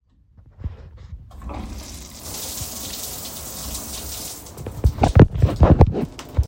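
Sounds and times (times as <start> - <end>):
shower turning on: 1.3 - 5.2.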